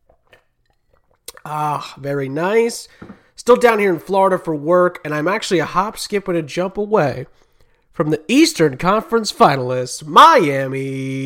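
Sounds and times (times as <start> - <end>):
sipping lemonade from a glass with slurping and swallowing: 0.0 - 2.0
speech: 1.5 - 7.4, 8.0 - 11.2.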